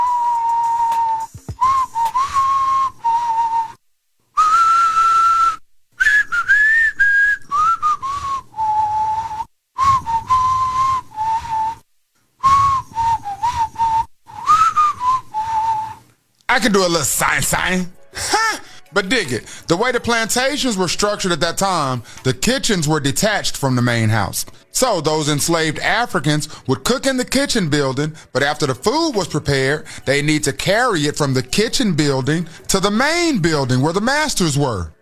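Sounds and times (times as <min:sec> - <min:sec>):
person whistling a melody: 0:00.0 - 0:03.8, 0:04.4 - 0:11.8, 0:12.4 - 0:16.0
speech: 0:16.6 - 0:18.4, 0:19.0 - 0:35.0.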